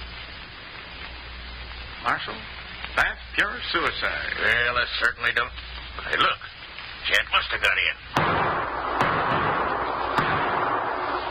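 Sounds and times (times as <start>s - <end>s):
steady hiss: 0.0s - 11.2s
speech: 2.0s - 8.4s
gunshots: 8.1s - 11.2s.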